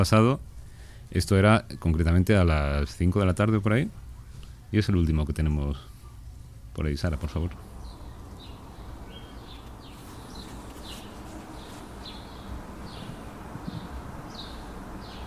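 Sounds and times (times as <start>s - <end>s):
speech: 0.0s - 0.5s, 1.1s - 4.0s, 4.7s - 5.9s, 6.8s - 7.7s
birds chirping outdoors: 7.0s - 15.2s.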